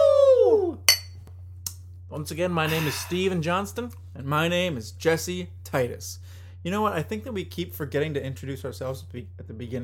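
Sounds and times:
steady low hum: 0.0 - 9.8
beer glasses clinking together: 0.9 - 1.2
speech: 2.2 - 9.8.

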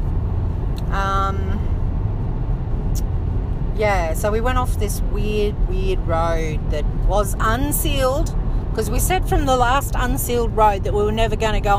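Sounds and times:
car engine with faulty loud muffler: 0.0 - 11.7
speech: 3.8 - 11.7.

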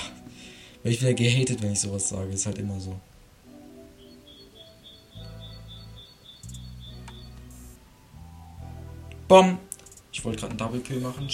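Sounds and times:
speech: 0.8 - 3.1, 9.3 - 11.3
bird chirping outside through a closed window: 3.7 - 8.2.

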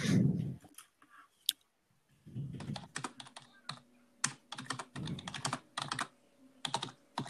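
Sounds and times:
fast forceful typing on a computer keyboard: 2.6 - 7.2.

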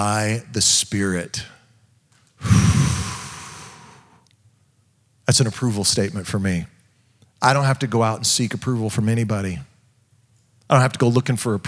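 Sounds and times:
speech: 0.0 - 1.6, 2.4 - 2.9, 5.3 - 6.8, 7.4 - 9.7, 10.7 - 11.6
deep breath taken during a quiet spoken prayer: 2.4 - 4.2.

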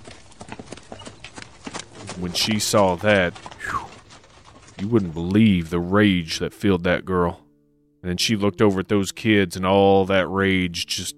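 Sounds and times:
horse hooves clip-clopping on a hard road: 0.0 - 6.3
speech: 2.2 - 3.8, 4.8 - 7.4, 8.0 - 11.1.

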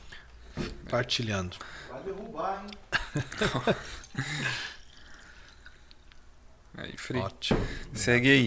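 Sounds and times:
speech: 0.9 - 4.7, 6.8 - 8.4
laughter: 2.9 - 4.6
water poured into a glass: 4.1 - 5.8.

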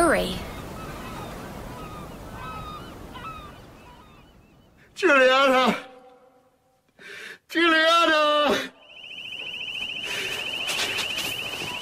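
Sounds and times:
speech: 0.1 - 0.5, 5.0 - 5.8
high-pitched electronic alarm ringing: 8.6 - 11.7.

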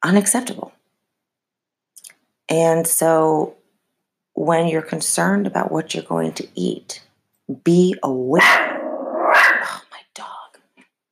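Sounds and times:
speech: 0.0 - 0.7, 2.5 - 3.6, 4.4 - 8.7
Pomeranian barking: 8.4 - 9.7.

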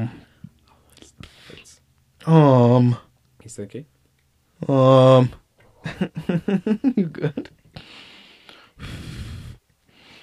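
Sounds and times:
speech: 2.3 - 3.9, 4.6 - 7.6
sharp noisy breath through the mouth: 7.8 - 10.2.

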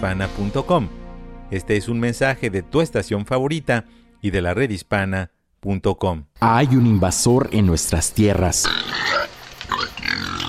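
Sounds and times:
speech: 0.0 - 9.9
feral hog grunting and snorting: 8.6 - 10.4.

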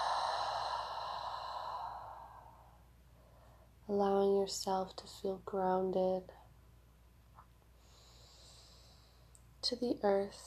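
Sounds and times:
long deep breath out: 0.0 - 3.8, 7.8 - 9.3
speech: 3.9 - 6.4, 9.6 - 10.4.

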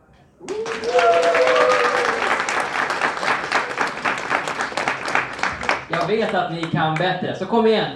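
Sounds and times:
audience cheering and whooping: 0.4 - 3.1
audience applauding contestants onto a stage: 0.4 - 7.1
speech: 6.1 - 7.9.

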